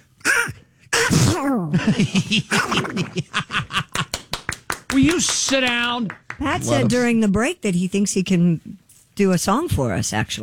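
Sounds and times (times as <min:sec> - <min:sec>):
voice imitating a cartoon duck sneezing: 0:00.2 - 0:01.7
speech: 0:01.4 - 0:03.8, 0:05.0 - 0:10.4
laughter: 0:01.8 - 0:04.4.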